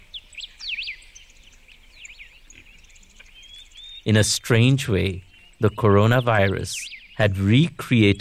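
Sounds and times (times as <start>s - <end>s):
birdsong in the mountains: 0.0s - 8.1s
speech: 4.0s - 8.1s.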